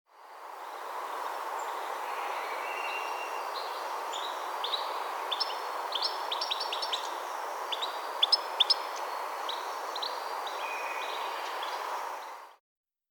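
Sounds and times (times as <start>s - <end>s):
low background hiss: 0.2s - 12.6s
European goldfinch (Carduelis carduelis) twittering calls: 2.5s - 11.8s.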